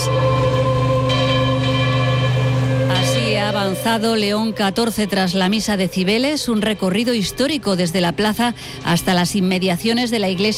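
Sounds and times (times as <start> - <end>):
church bells pealing continuously: 0.0 - 6.3
speech: 3.6 - 10.5.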